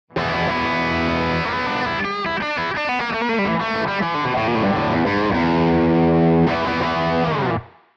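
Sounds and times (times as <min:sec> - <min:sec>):
guitar hum: 0:00.1 - 0:07.8.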